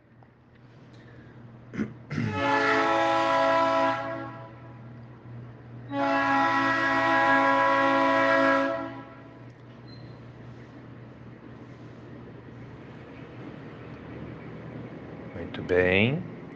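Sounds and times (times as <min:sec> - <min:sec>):
low rumble of passing train on rails: 0:00.0 - 0:16.5
passing train horn blasts: 0:02.2 - 0:04.8, 0:05.9 - 0:09.4
speech: 0:15.7 - 0:16.3.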